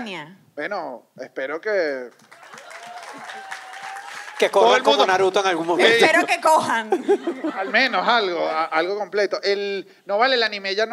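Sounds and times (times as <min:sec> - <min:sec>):
speech: 0:00.0 - 0:02.4, 0:04.4 - 0:10.9
audience applauding a couple: 0:02.1 - 0:06.4
laughter: 0:04.5 - 0:09.0.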